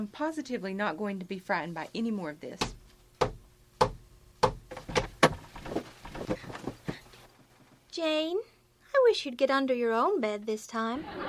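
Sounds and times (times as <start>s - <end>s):
speech: 0.0s - 2.8s, 8.0s - 11.2s
knocking on a door: 2.6s - 7.0s
laughter: 10.9s - 11.2s.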